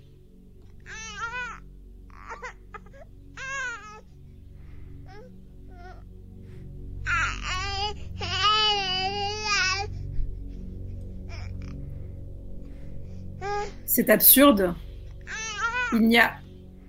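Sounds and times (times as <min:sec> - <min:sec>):
baby crying: 0:00.9 - 0:04.0, 0:07.1 - 0:09.9, 0:11.3 - 0:11.8, 0:13.4 - 0:13.8, 0:15.3 - 0:16.4
low steady rumbling background: 0:01.6 - 0:16.8
speech: 0:14.0 - 0:14.8, 0:15.9 - 0:16.4.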